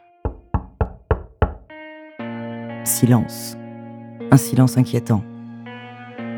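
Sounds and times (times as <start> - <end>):
knocking on a hotel room door: 0.3 - 1.7
speech: 2.8 - 3.6, 4.3 - 5.3.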